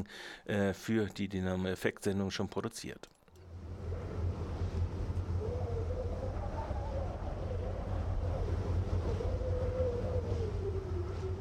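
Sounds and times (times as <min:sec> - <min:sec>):
speech: 0:00.0 - 0:03.2
strong constant wind blowing: 0:03.6 - 0:11.4.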